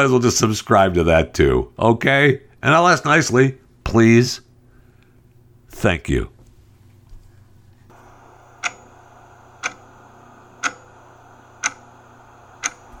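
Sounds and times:
speech: 0:00.0 - 0:04.4, 0:05.8 - 0:06.4
low hum: 0:00.0 - 0:12.9
clock ticking: 0:08.6 - 0:09.0, 0:09.6 - 0:11.0, 0:11.6 - 0:12.9.

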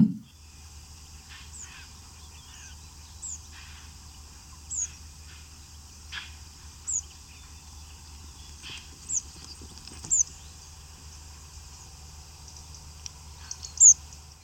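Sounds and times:
steady low rumble: 0:00.0 - 0:00.3
migrating birds calling while passing overhead: 0:00.0 - 0:14.4.

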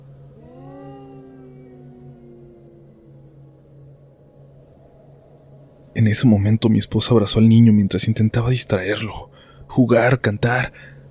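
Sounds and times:
steady low droning hum: 0:00.0 - 0:11.0
woman's ghostly mournful wailing lament: 0:00.4 - 0:03.5
speech: 0:06.0 - 0:11.0.

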